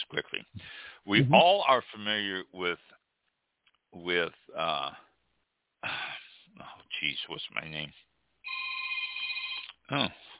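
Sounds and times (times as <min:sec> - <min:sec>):
speech: 0:00.1 - 0:03.0, 0:03.9 - 0:05.1, 0:05.8 - 0:08.1, 0:09.9 - 0:10.2
telephone ringing with an incoming call: 0:08.4 - 0:09.7.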